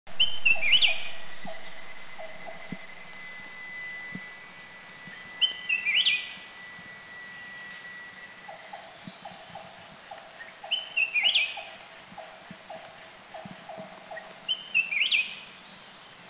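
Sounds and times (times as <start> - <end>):
Black-crested Bulbul calling in south Thailand: 0.1 - 15.6.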